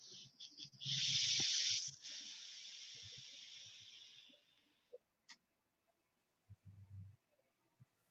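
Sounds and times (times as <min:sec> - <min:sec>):
e-cigarette coil set to 60 watts sizzling during a vape puff: 0:00.0 - 0:04.7.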